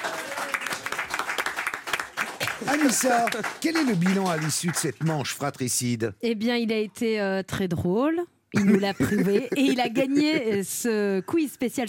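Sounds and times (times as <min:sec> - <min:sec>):
audience applause in a studio quiz show: 0:00.0 - 0:05.5
speech: 0:02.6 - 0:11.8
laughter: 0:08.6 - 0:11.7.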